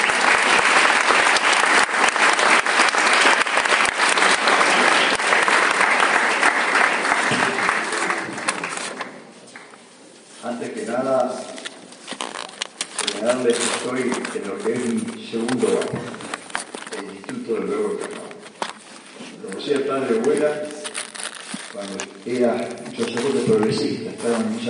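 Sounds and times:
audience applause welcoming a lecturer at a conference: 0:00.0 - 0:09.7
person speaking: 0:10.4 - 0:24.6.

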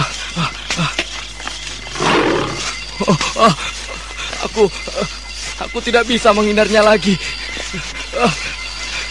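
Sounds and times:
tiger roaring: 0:01.8 - 0:02.7
speech: 0:03.0 - 0:03.8, 0:04.4 - 0:08.5.

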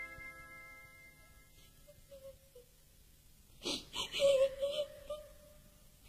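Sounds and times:
woman crying in a wailing sob: 0:03.7 - 0:05.6.

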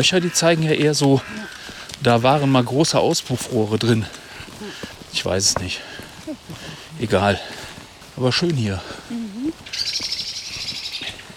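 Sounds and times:
speech: 0:00.0 - 0:07.6, 0:08.2 - 0:10.1
blackbird scolding call: 0:09.6 - 0:11.2.

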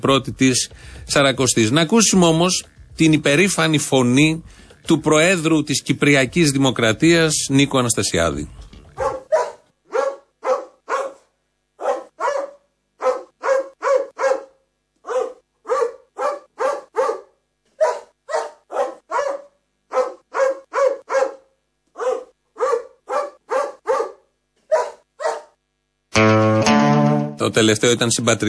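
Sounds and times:
speech: 0:00.0 - 0:08.7, 0:27.6 - 0:28.4
music: 0:00.3 - 0:04.2, 0:26.1 - 0:27.9
dog barking: 0:09.0 - 0:25.6.

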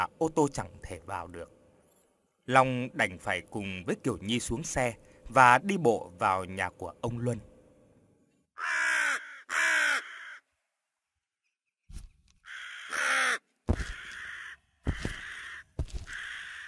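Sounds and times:
speech: 0:00.0 - 0:01.6, 0:02.5 - 0:07.5
crow cawing loudly: 0:08.6 - 0:10.5, 0:12.4 - 0:16.6.

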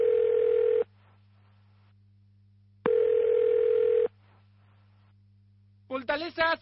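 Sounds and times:
electronic telephone ringing for an incoming call at a secret fortress: 0:00.0 - 0:00.8, 0:02.9 - 0:04.1
speech: 0:06.2 - 0:06.6.

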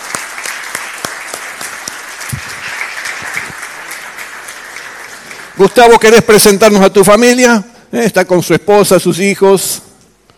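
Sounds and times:
church congregation clapping during a Sunday service: 0:00.0 - 0:07.2
speech: 0:05.6 - 0:09.9.

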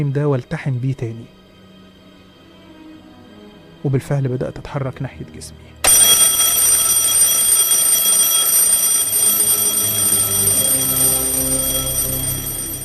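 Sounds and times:
speech: 0:00.0 - 0:01.4, 0:03.8 - 0:05.8
alarm clock ringing with an electronic tone: 0:05.8 - 0:12.8.

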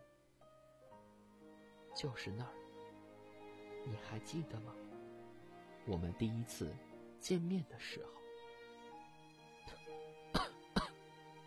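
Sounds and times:
speech: 0:02.0 - 0:02.6, 0:03.8 - 0:04.9, 0:05.8 - 0:08.2
boy coughing faintly: 0:10.4 - 0:11.0.

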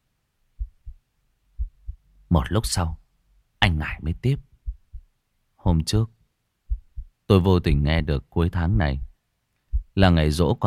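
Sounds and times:
heartbeat pounding: 0:00.6 - 0:01.0, 0:01.6 - 0:02.1, 0:04.4 - 0:05.1, 0:06.7 - 0:07.8, 0:08.7 - 0:10.0
speech: 0:02.3 - 0:03.0, 0:03.6 - 0:04.5, 0:05.6 - 0:06.2, 0:07.3 - 0:09.1, 0:10.0 - 0:10.6.

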